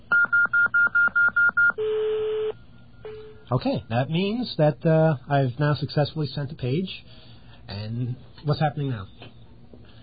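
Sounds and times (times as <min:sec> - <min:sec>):
touch-tone phone keypad beeps entering digits: 0:00.1 - 0:01.9
speech: 0:03.5 - 0:09.3.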